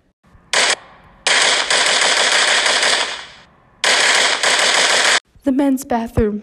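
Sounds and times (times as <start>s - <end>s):
close loud bursts of rapid gunfire: 0.6s - 5.2s
speech: 5.5s - 6.4s.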